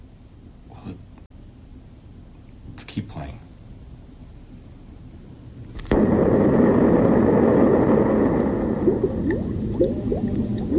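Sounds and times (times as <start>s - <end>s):
speech: 3.0s - 3.5s
sudden loud burst: 5.8s - 10.7s
sustained bubbling wash: 5.9s - 10.7s.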